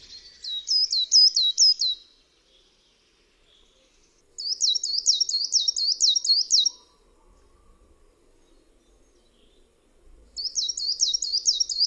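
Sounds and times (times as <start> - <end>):
coal tit song: 0.0 - 2.8, 4.0 - 7.0, 10.4 - 11.8.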